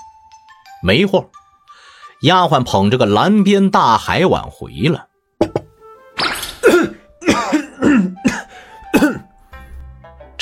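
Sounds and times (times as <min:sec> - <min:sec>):
speech: 0:00.8 - 0:01.4, 0:02.2 - 0:05.1
person coughing after choking on tofu: 0:06.6 - 0:09.3.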